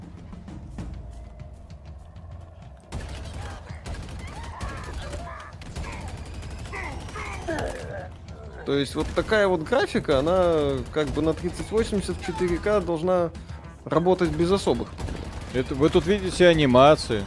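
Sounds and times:
video game booming explosions: 0:00.0 - 0:17.2
video game gunfire bursts: 0:02.9 - 0:13.2, 0:14.2 - 0:17.2
speech: 0:08.7 - 0:17.2.

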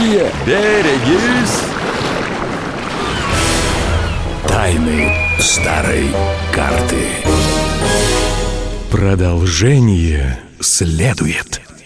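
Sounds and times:
wind: 0:00.0 - 0:03.3
speech: 0:00.1 - 0:01.8, 0:04.6 - 0:08.0, 0:08.9 - 0:11.7
large ocean wave crashing: 0:00.3 - 0:09.8
brief wavering cry: 0:03.0 - 0:04.4.

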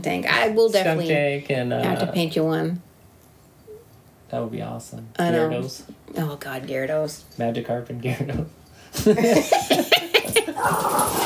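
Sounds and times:
speech: 0:00.0 - 0:02.9, 0:04.3 - 0:09.8
laughter: 0:09.0 - 0:11.2
angry dogs barking aggressively: 0:09.6 - 0:11.2.

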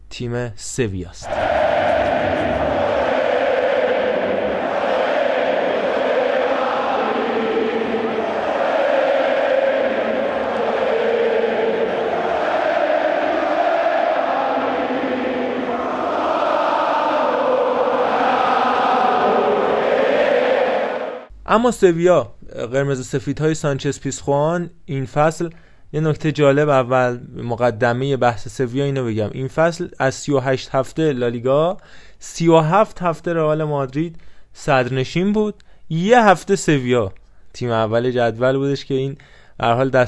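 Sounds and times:
speech: 0:00.2 - 0:02.5, 0:21.5 - 0:40.0
huge football stadium crowd chanting in unison: 0:01.2 - 0:21.3.

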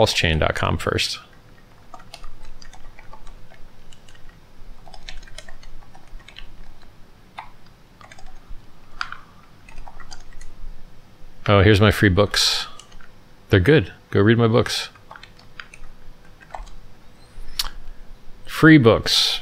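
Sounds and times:
speech: 0:00.0 - 0:01.3, 0:11.5 - 0:12.7, 0:13.5 - 0:15.0, 0:18.6 - 0:19.4
typing on a computer keyboard: 0:01.6 - 0:08.4, 0:09.7 - 0:10.5, 0:12.8 - 0:13.1, 0:14.9 - 0:16.8.

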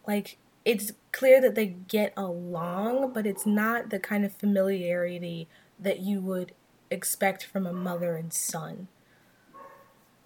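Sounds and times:
quiet background noise: 0:00.0 - 0:10.2
speech: 0:00.1 - 0:09.0
faint dog bark: 0:03.0 - 0:03.9, 0:09.5 - 0:10.0.

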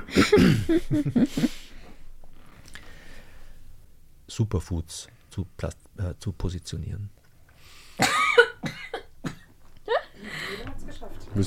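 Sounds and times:
loud coughs: 0:00.0 - 0:01.1, 0:08.0 - 0:10.1
speech: 0:00.1 - 0:01.6, 0:04.3 - 0:07.2.

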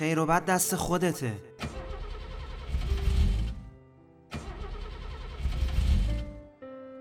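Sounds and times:
speech: 0:00.0 - 0:01.5
car engine cranking and failing to start: 0:01.6 - 0:03.7, 0:04.3 - 0:06.4.

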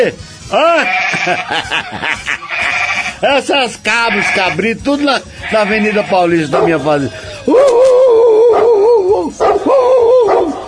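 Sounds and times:
speech: 0:00.0 - 0:08.0
laughter: 0:01.0 - 0:02.9
dog howling bark: 0:06.5 - 0:06.8, 0:07.6 - 0:10.6.

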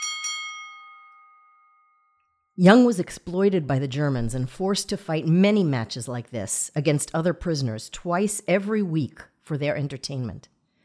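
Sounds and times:
metallic boxing ring bell ringing: 0:00.0 - 0:02.6
speech: 0:02.6 - 0:10.5.

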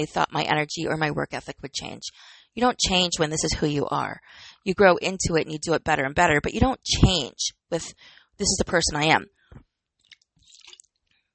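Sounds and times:
speech: 0:00.0 - 0:09.7
person sipping water: 0:10.1 - 0:11.0.

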